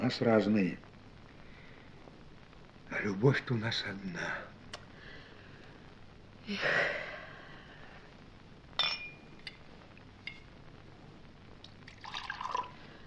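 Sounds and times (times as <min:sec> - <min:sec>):
soft hiss: 0:00.0 - 0:13.0
speech: 0:00.1 - 0:00.9, 0:02.9 - 0:04.5, 0:06.5 - 0:07.0
sharp glassy clinks: 0:08.8 - 0:09.6
liquid pouring from a bottle into a glass: 0:11.6 - 0:12.9.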